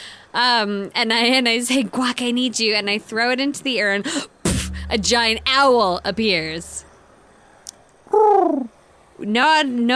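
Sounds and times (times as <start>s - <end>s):
speech: 0.3s - 4.3s, 4.9s - 6.8s, 8.1s - 9.9s
pigeon cooing: 8.1s - 8.7s.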